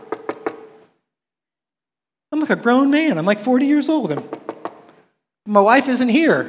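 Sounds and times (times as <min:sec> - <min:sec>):
knocking on a door: 0:00.0 - 0:00.8, 0:04.1 - 0:04.9
speech: 0:02.5 - 0:04.4, 0:05.5 - 0:06.4.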